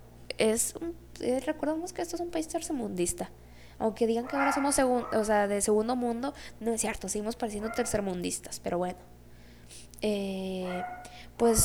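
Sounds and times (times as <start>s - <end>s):
speech: 0.4s - 11.6s
dogs barking: 2.5s - 9.2s, 10.5s - 11.6s.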